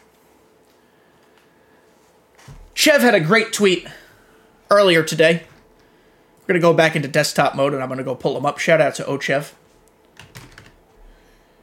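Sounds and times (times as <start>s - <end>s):
speech: 2.8s - 4.0s, 4.7s - 5.5s, 6.5s - 9.6s
typing on a desktop computer keyboard: 10.2s - 10.8s.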